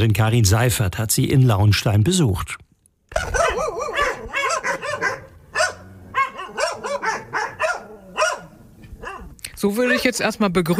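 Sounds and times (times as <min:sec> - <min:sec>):
speech: 0:00.0 - 0:03.4, 0:09.6 - 0:10.7
dogs barking excitedly at an animal rescue association in Nauenstein Germany: 0:03.1 - 0:09.4.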